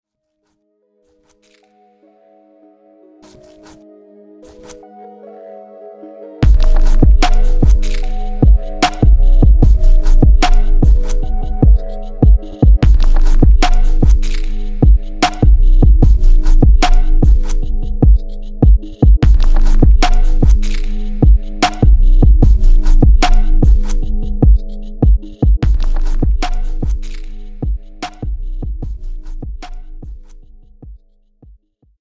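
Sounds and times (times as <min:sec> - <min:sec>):
organic foley drums: 0:06.4 - 0:23.8, 0:24.4 - 0:30.2.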